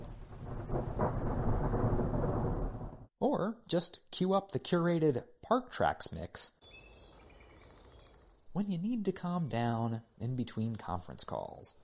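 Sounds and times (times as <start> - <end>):
thunder from a thunderstorm in a national park: 0.0 - 3.1
speech: 3.3 - 6.6, 8.5 - 11.8.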